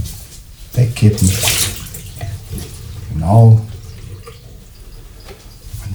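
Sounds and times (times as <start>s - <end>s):
speech: 0.8s - 1.6s, 3.2s - 3.7s
water poured out of a coffee pod machine being emptied: 1.0s - 5.0s.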